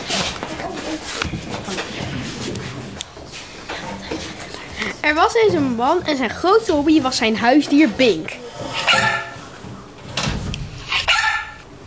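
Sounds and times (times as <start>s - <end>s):
speech: 5.0s - 9.0s
dog yelping and whimpering: 8.4s - 9.4s
dog barking: 8.8s - 9.4s, 10.9s - 11.6s.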